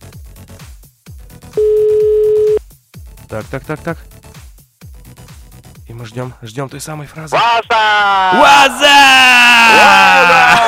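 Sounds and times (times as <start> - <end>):
telephone line tone as a call goes through: 1.6 - 2.6
speech: 3.3 - 4.2, 6.0 - 10.6.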